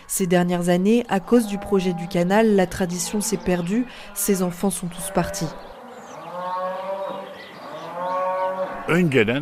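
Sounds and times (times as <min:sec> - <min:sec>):
speech: 0:00.1 - 0:05.7, 0:08.9 - 0:09.4
herd of cows mooing outdoors: 0:00.3 - 0:09.2.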